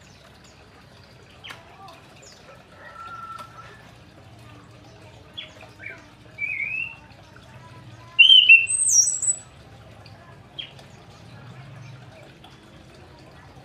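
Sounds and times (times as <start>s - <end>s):
orange-headed thrush singing in whistled phrases: 6.4s - 7.0s, 8.2s - 9.5s.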